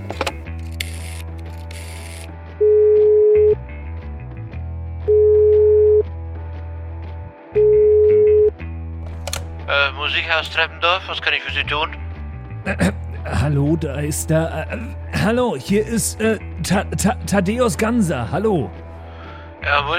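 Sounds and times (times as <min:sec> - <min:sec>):
busy clattering mechanical noise: 0:00.0 - 0:02.3
telephone in a kitchen sounding a beep tone: 0:02.6 - 0:03.6, 0:05.1 - 0:06.0, 0:07.6 - 0:08.5
speech: 0:10.2 - 0:12.0, 0:12.6 - 0:18.8, 0:19.6 - 0:19.9.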